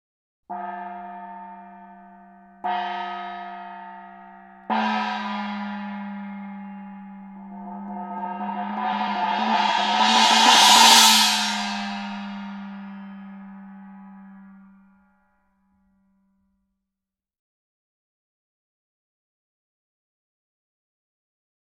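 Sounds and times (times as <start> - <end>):
gong: 4.0 - 14.8.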